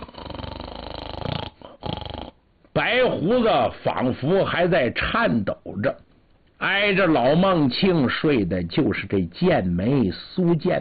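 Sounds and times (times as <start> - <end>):
sleeping man snoring loudly and raspily: 0.0 - 2.4
speech: 2.8 - 6.0, 6.6 - 10.7.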